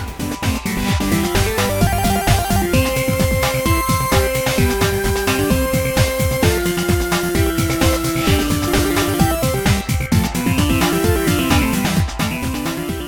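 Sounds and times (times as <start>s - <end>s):
upbeat electronic remix of a video game tune: 0.0s - 13.0s.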